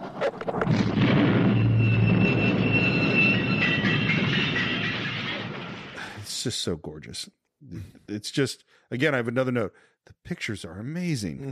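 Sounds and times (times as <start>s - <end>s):
roaring rumble of debris and grinding: 0.0s - 6.2s
explosive device blowing up a train: 0.5s - 6.3s
faint high metallic whines: 1.4s - 5.9s
speech: 6.4s - 11.5s.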